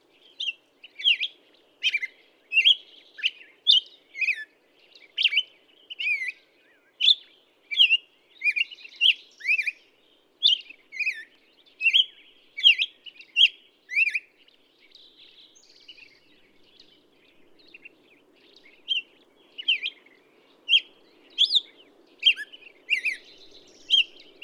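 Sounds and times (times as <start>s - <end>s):
Black-headed Grosbeak singing warbled phrases: 0.1s - 24.4s.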